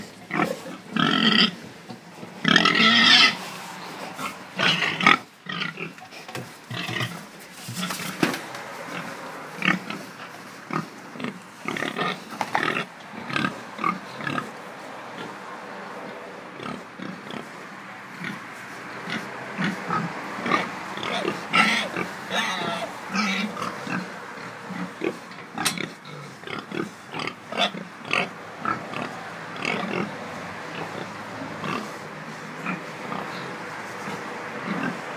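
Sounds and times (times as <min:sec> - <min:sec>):
fattening pigs greeting: 0:00.0 - 0:15.4, 0:16.5 - 0:35.1.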